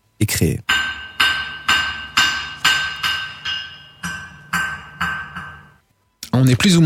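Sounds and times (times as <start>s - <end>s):
hammer striking an anvil in a forge: 0.7s - 5.8s.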